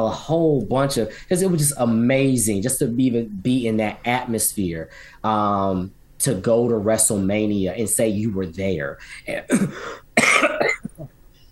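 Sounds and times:
speech: 0:00.0 - 0:10.7
coughing and throat clearing from a throat dried by whiskey: 0:09.5 - 0:11.1.

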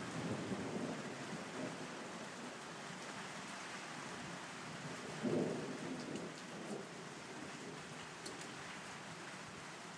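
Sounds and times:
low rumble of thunder: 0:00.0 - 0:02.6, 0:04.8 - 0:08.4
steady rain hissing: 0:00.0 - 0:09.9.

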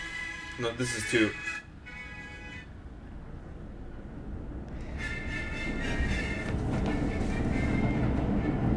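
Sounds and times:
speech: 0:00.6 - 0:01.6
train clattering along rails: 0:04.7 - 0:08.7.

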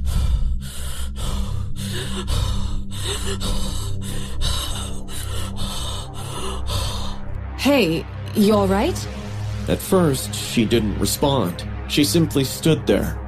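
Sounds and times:
person panting heavily, struggling to breathe: 0:00.0 - 0:07.3
low steady hum: 0:00.0 - 0:13.2
speech: 0:03.2 - 0:03.9, 0:07.6 - 0:13.2.

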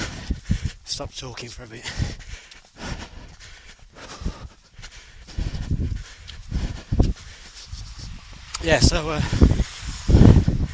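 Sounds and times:
heavy labored breathing from someone walking uphill: 0:00.0 - 0:00.9, 0:01.7 - 0:08.2
speech: 0:00.9 - 0:02.2, 0:08.6 - 0:09.6.

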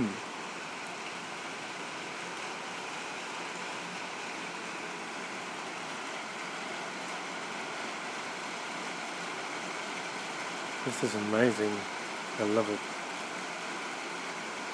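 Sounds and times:
steady rain: 0:00.0 - 0:14.7
speech: 0:10.8 - 0:12.9.

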